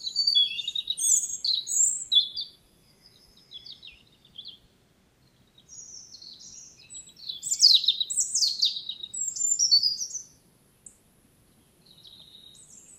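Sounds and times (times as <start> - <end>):
European robin Erithacus rubecula song of tinkling warbled notes and trills: 0.0 - 4.7, 5.4 - 11.0.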